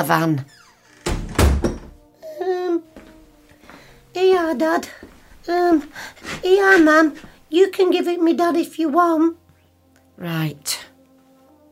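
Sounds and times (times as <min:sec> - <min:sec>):
speech: 0:00.0 - 0:00.6, 0:04.2 - 0:09.4, 0:10.2 - 0:10.9
door pushed shut with a heavy resonant thump: 0:00.6 - 0:02.0.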